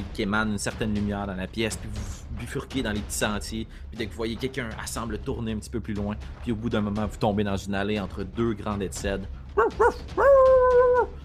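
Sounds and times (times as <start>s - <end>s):
speech: 0.2s - 11.2s
dog barking: 9.6s - 10.5s
dog howling while running: 9.6s - 11.2s.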